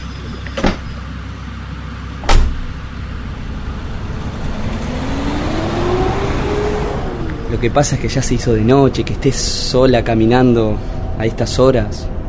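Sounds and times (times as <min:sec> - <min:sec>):
soft road hum: 0:00.0 - 0:12.2
car door thumps as a passenger gets in: 0:00.4 - 0:01.0, 0:02.2 - 0:02.8
car engine rising in pitch as the car pulls away along a road at night: 0:02.0 - 0:12.2
speech: 0:07.6 - 0:12.2.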